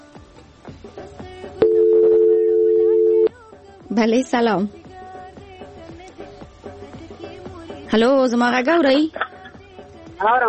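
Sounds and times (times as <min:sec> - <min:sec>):
telephone line tone for an incoming call-in: 0:01.6 - 0:03.3
speech: 0:04.0 - 0:04.8, 0:07.9 - 0:09.2, 0:10.2 - 0:10.4.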